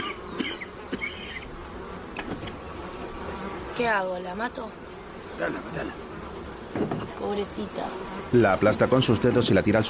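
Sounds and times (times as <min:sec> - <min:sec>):
honeybees buzzing at an open hive: 0:00.0 - 0:09.8
individual honeybee droning past: 0:00.0 - 0:09.8
speech: 0:03.8 - 0:06.0, 0:06.8 - 0:09.8.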